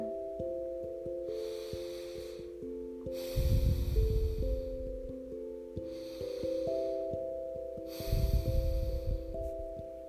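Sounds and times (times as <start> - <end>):
soft sustained musical drone: 0.0 - 10.0
slow loud nasal yoga breathing imitating ocean waves: 0.5 - 10.0.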